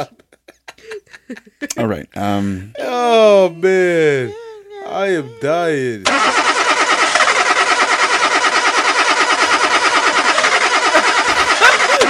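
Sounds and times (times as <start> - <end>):
laughter: 0.0 - 6.1, 9.4 - 12.0
speech: 1.3 - 6.4
car engine cranking, failing to start: 6.0 - 12.0.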